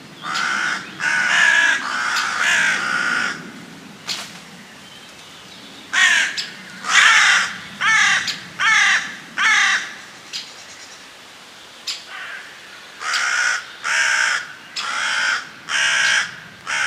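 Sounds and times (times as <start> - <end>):
hooded crow cawing: 0.2 - 3.5, 6.0 - 10.0, 12.1 - 16.8.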